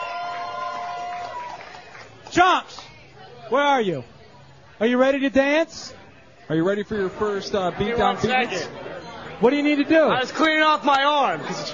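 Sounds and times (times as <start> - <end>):
audience clapping and cheering: 0.0 - 2.4
speech: 2.4 - 2.9, 3.5 - 4.2, 4.8 - 8.8, 9.4 - 11.7.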